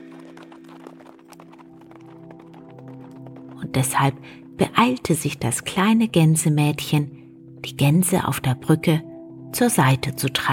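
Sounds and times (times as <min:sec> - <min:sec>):
horses' hoofbeats clip-clopping over a hollow lane: 0:00.0 - 0:06.1
speech: 0:03.6 - 0:10.5.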